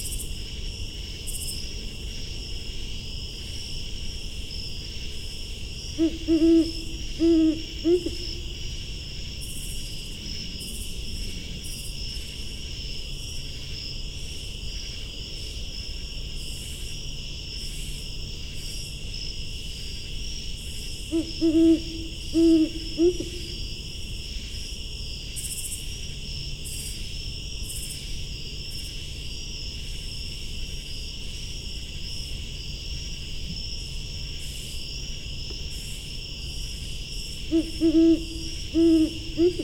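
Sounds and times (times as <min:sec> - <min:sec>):
high chorus of insects or crickets: 0:00.0 - 0:39.6
great horned owl hooting in a forest: 0:06.0 - 0:08.5, 0:21.1 - 0:23.7, 0:37.5 - 0:39.6.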